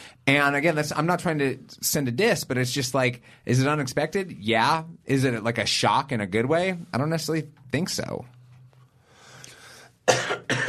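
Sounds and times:
speech: 0:00.3 - 0:08.4, 0:10.1 - 0:10.6
person coughing: 0:10.0 - 0:10.6.

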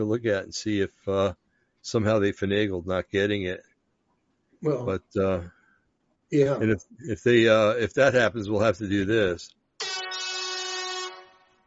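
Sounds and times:
speech: 0:00.0 - 0:03.7, 0:04.6 - 0:05.6, 0:06.3 - 0:09.6
air horn blast: 0:09.8 - 0:11.6.

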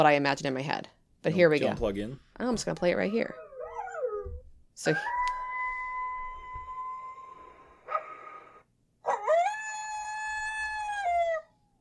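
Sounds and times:
speech: 0:00.0 - 0:03.4, 0:04.8 - 0:05.2
dog-like howling from a played recording: 0:03.4 - 0:11.5.

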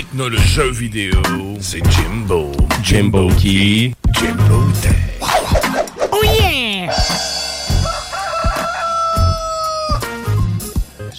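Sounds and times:
speech: 0:00.0 - 0:05.1
heavy thumping beats: 0:00.4 - 0:09.4
loud drawn-out rooster crow: 0:07.2 - 0:10.4.

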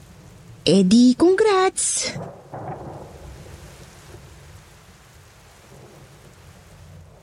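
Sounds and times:
heavy rain: 0:00.0 - 0:07.2
deep rumble of thunder: 0:00.2 - 0:05.0, 0:05.6 - 0:07.2
speech: 0:00.7 - 0:02.8.

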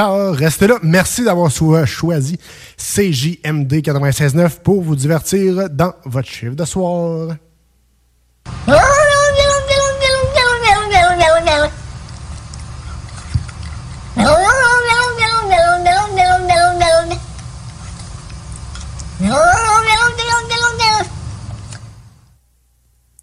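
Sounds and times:
speech: 0:00.0 - 0:07.5, 0:08.5 - 0:09.1
low rumble: 0:08.5 - 0:22.4
cat meowing: 0:08.7 - 0:11.8, 0:14.2 - 0:17.2, 0:19.2 - 0:21.1.

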